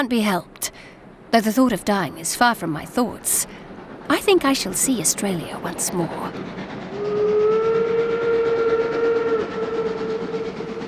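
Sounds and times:
speech: 0:00.0 - 0:06.9
train rumbling: 0:00.0 - 0:10.8
long sustained train steam whistle: 0:06.9 - 0:10.8.

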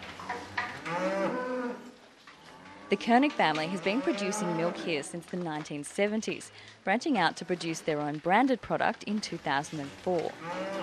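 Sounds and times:
quiet farm noises: 0:00.0 - 0:08.2, 0:09.4 - 0:10.8
Jersey dairy cow mooing at milking time on a farm: 0:00.6 - 0:05.0, 0:10.3 - 0:10.8
speech: 0:02.9 - 0:10.8.

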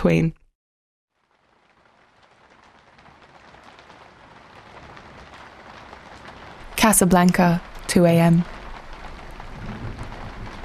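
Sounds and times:
speech: 0:00.0 - 0:00.4, 0:06.8 - 0:08.5
steady rain pouring: 0:01.1 - 0:10.6
low rumble: 0:07.6 - 0:10.6.

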